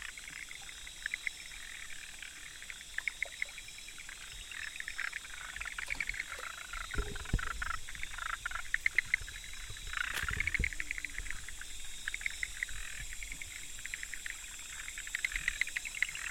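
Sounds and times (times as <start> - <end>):
frog chorus of fast scratchy pulsed calls: 0.0 - 16.2
steady hiss: 0.0 - 16.2
low splashes or knocks: 5.9 - 14.1.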